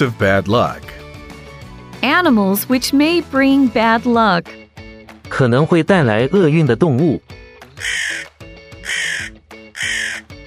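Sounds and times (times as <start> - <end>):
speech: 0.0 - 0.9, 2.0 - 4.6, 5.3 - 8.2
crow cawing: 7.7 - 10.4.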